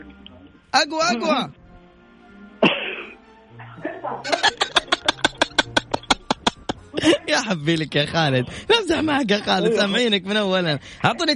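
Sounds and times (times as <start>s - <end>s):
speech: 0.7s - 1.6s, 4.1s - 4.7s, 7.0s - 11.3s
harsh throat clearing: 2.6s - 4.2s
laughter: 3.6s - 10.2s.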